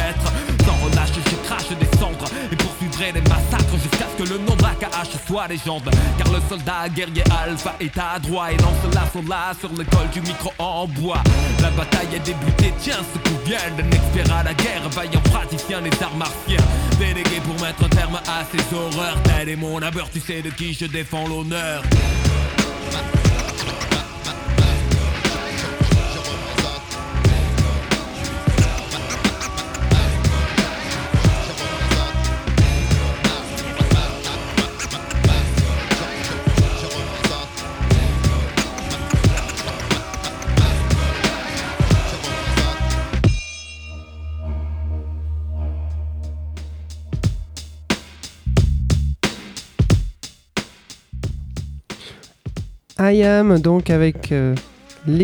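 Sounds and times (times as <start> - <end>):
instrumental hip-hop beat ending a French rap song: 0.0 - 43.5, 44.7 - 55.2
speech: 4.2 - 23.2, 53.0 - 55.2.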